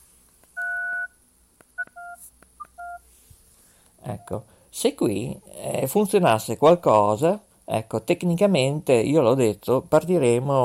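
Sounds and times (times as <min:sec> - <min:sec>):
touch-tone DTMF beeps dialing a telephone number: 0:00.6 - 0:01.1, 0:01.8 - 0:03.0
speech: 0:04.1 - 0:10.6.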